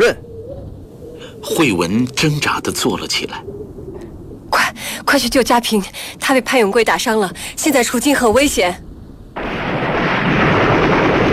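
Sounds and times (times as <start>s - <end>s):
speech: 1.4s - 3.8s, 5.1s - 8.9s
dense gunfire in the distance during a wartime village encirclement: 9.4s - 11.3s.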